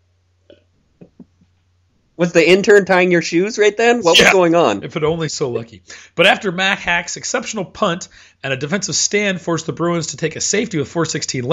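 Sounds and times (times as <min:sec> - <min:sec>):
speech: 0:02.2 - 0:11.5
person hiccuping: 0:04.1 - 0:04.4.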